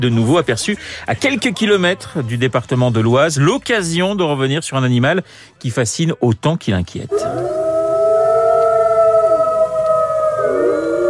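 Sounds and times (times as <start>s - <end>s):
speech: 0.0s - 7.6s
wolves howling in chorus: 7.1s - 11.0s.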